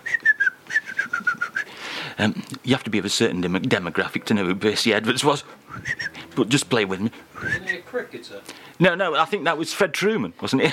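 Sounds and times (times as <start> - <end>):
person whistling an imitation of birds tweeting: 0.0 - 1.7, 5.7 - 6.2, 7.4 - 7.9
speech: 2.2 - 10.7.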